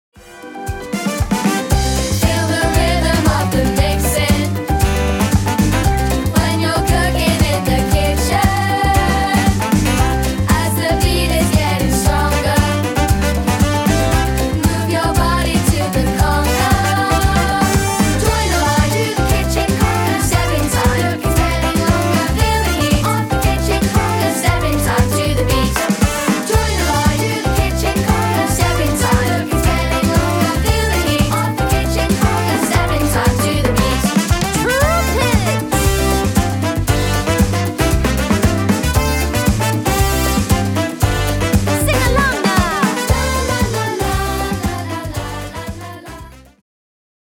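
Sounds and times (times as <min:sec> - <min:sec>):
kitchen conga: 0:00.2 - 0:46.1.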